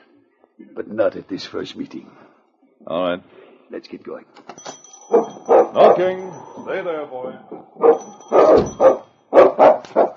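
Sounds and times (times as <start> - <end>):
speech: 0.8 - 9.0
dog barking behind a closed solid door: 5.1 - 6.2, 7.8 - 10.1.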